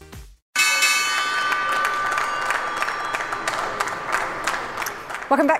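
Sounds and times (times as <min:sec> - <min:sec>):
stock exchange opening bell clanging: 0:00.5 - 0:03.8
crowd applauding and cheering: 0:01.1 - 0:05.5.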